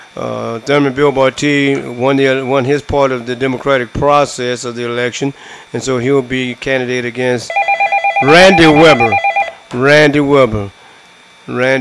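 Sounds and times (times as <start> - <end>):
speech: 0.2 - 7.6, 8.2 - 10.8, 11.5 - 11.7
telephone ringing with an incoming call, pulsing electronic ring: 7.5 - 9.6.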